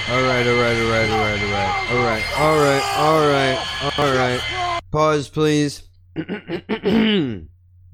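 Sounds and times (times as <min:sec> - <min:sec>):
speech: 0:00.1 - 0:07.5
person clearing throat: 0:06.2 - 0:07.5.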